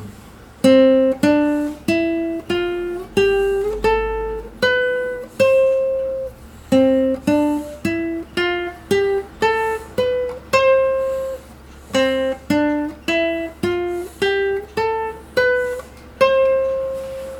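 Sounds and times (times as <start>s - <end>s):
classical guitar playing a C major scale: 0.0s - 17.3s.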